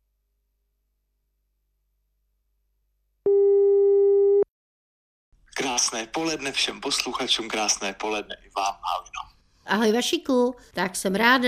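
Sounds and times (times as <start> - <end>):
telephone ringing tone while placing a call: 3.3 - 4.5
speech: 5.8 - 11.4.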